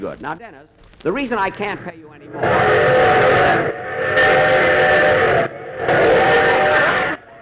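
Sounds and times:
speech: 0.0s - 6.5s
train steam whistle blasts with breathy hiss: 2.3s - 7.4s.

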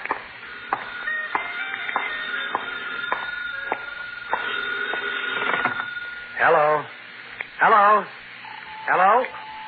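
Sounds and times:
telephone ringing in a phone booth: 0.5s - 6.4s, 8.4s - 9.6s.

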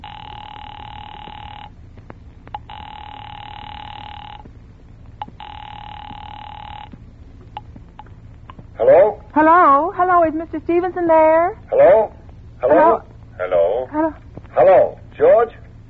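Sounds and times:
telephone ringing on the line through a receiver: 0.0s - 1.9s, 2.5s - 4.5s, 5.2s - 7.6s
low steady hum: 0.0s - 15.8s
speech: 9.4s - 13.0s.

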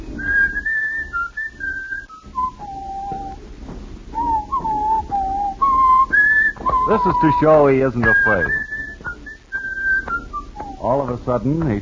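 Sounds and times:
man whistling a melody by the waterfront: 0.0s - 3.4s, 4.1s - 11.1s
low rumble: 0.0s - 11.8s
speech: 6.9s - 8.7s, 10.8s - 11.8s.

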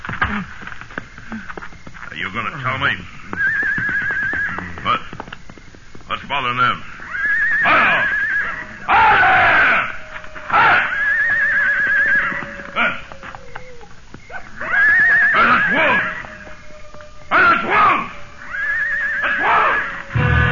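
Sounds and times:
speech: 0.3s - 0.6s, 2.4s - 3.2s, 6.3s - 6.9s
horse screaming and whinnying: 3.3s - 5.1s, 6.9s - 20.3s.

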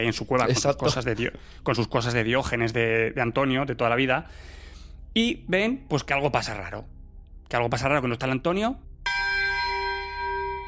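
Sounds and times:
speech: 0.0s - 4.6s, 5.2s - 8.9s
church bell ringing: 9.1s - 10.6s.

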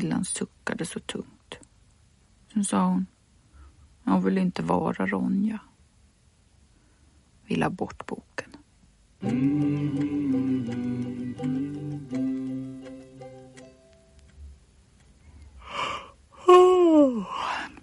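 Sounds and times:
speech: 0.0s - 1.6s, 2.5s - 3.2s, 4.0s - 5.7s, 7.5s - 8.6s, 9.2s - 12.2s
sustained tonal music: 9.2s - 14.2s
child yawning: 15.7s - 17.8s.

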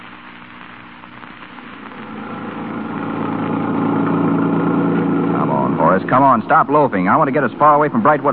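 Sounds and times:
car engine running as the car is driven away from a hospital: 2.0s - 8.2s
speech: 6.1s - 8.3s.

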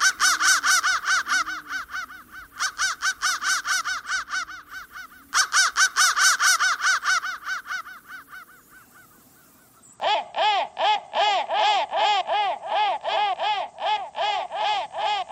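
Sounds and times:
crow giving harsh caws: 0.0s - 15.3s.

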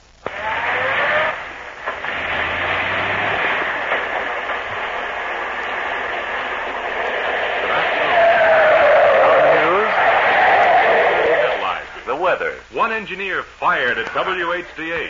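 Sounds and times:
steady roar of road and engine noise: 0.0s - 11.8s
car braking hard in the street with tires skidding: 0.2s - 11.8s
speech: 13.0s - 15.0s.

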